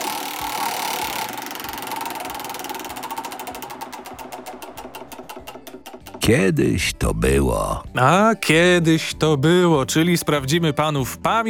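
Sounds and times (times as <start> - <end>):
game show prize wheel spinning: 0.0 - 6.6
speech: 6.3 - 11.4.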